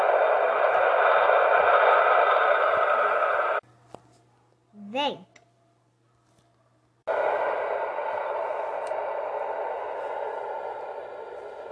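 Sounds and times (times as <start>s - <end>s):
wind blowing: 0.0s - 3.6s, 7.1s - 11.7s.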